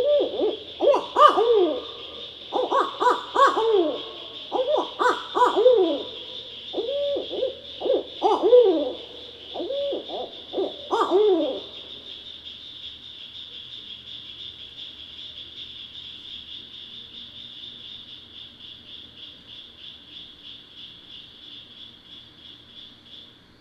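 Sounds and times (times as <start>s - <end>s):
barred owl hooting: 0.0s - 11.9s
background hiss: 0.0s - 23.5s.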